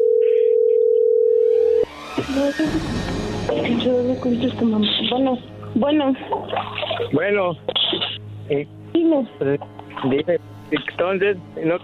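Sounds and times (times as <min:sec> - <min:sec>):
telephone dial tone while a call is placed: 0:00.0 - 0:01.8
phone line noise: 0:00.0 - 0:01.9
speech: 0:02.3 - 0:11.8.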